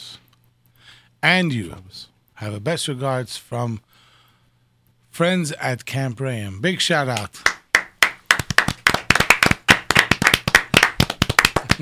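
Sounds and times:
speech: 1.2s - 4.0s, 5.2s - 7.5s
several people clapping hands: 7.1s - 11.8s.

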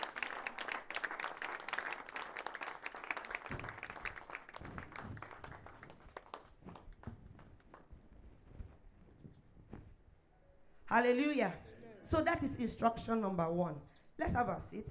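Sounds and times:
crowd applauding: 0.0s - 7.1s
speech: 10.9s - 14.8s.

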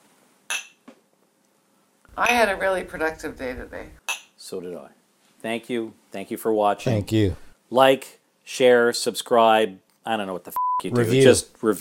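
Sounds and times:
glasses clinking in a toast: 0.5s - 0.8s
speech: 2.2s - 11.7s.

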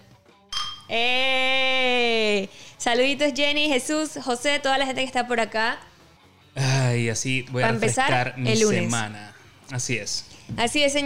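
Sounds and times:
glasses clinking in a toast: 0.5s - 0.9s
speech: 0.9s - 1.5s, 2.4s - 5.9s, 6.6s - 11.0s.

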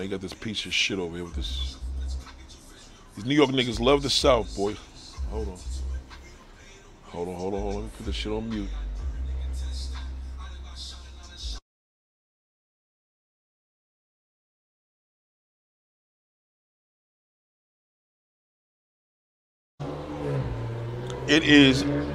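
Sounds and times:
speech: 0.0s - 1.8s, 3.2s - 5.8s, 7.1s - 8.8s, 21.3s - 22.0s
loud bass-heavy music with vocals from a passing car radio: 0.0s - 11.6s, 19.8s - 22.1s.

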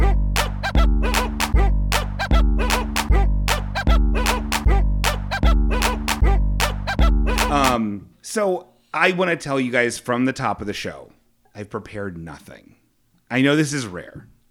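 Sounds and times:
bouncy dog-themed music jingle with thumping bass line: 0.0s - 7.8s
speech: 8.4s - 14.3s.

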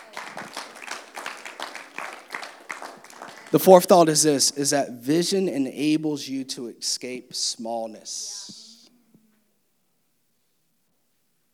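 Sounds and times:
crowd applauding: 0.0s - 4.7s
faint murmur of voices: 0.0s - 9.3s
speech: 3.5s - 8.6s.

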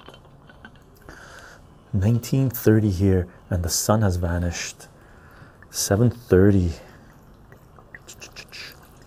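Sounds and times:
low hum: 0.0s - 9.0s
speech: 1.9s - 4.9s, 5.7s - 6.9s
vodka poured over fruit: 5.1s - 9.0s.

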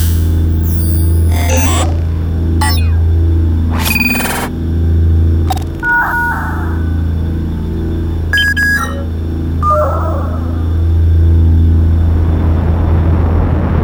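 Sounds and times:
spaceship interface beeps: 0.0s - 2.0s, 2.6s - 3.1s, 3.7s - 4.6s, 5.4s - 7.1s, 8.3s - 10.8s
spaceship cockpit hum: 0.0s - 13.7s.

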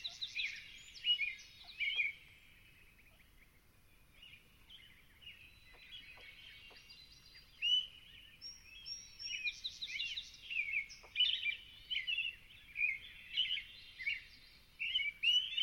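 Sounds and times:
American Robin caroling at dawn at Long Swamp in the Okanogan mountains: 0.0s - 15.6s.

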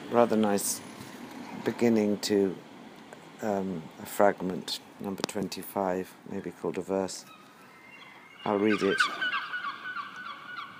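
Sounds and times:
speech: 0.1s - 0.9s, 1.6s - 2.7s, 3.4s - 7.4s, 8.4s - 9.3s
seagulls calling overhead: 6.3s - 10.7s.

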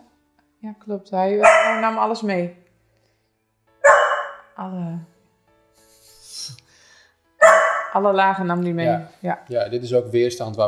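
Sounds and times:
speech: 0.6s - 2.6s, 4.6s - 5.1s, 6.4s - 6.6s, 7.9s - 10.6s
dog whining: 1.4s - 2.1s, 3.8s - 4.6s, 7.4s - 8.0s
dog barking: 1.4s - 2.2s, 3.8s - 4.6s, 7.4s - 8.2s.

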